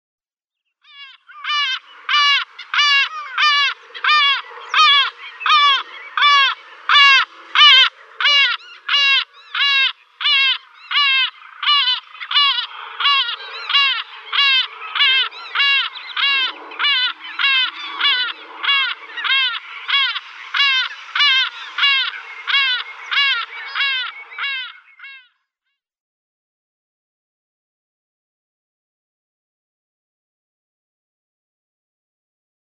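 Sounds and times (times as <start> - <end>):
Caspian gull calling at nest: 0.9 - 25.4.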